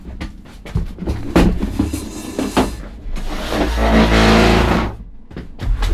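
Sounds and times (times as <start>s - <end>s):
chair without wheels dragged scraping across the floor: 1.6s - 5.0s.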